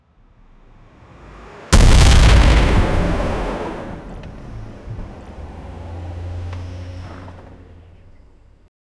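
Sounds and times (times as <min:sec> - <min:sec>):
big car and truck crash accident: 0:01.8 - 0:07.8.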